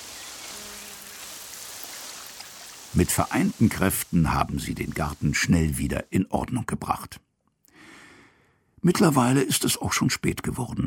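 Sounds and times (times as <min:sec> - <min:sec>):
water falling on flowers being watered in a garden: 0:00.0 - 0:06.3
speech: 0:02.9 - 0:07.3, 0:08.8 - 0:10.8.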